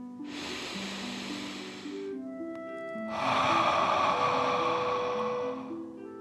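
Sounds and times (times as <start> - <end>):
soft music: 0.0 - 6.2
forceful exhale through the mouth: 0.3 - 2.1, 3.1 - 5.8
deep breath in through the nose: 0.3 - 2.2, 3.1 - 5.9.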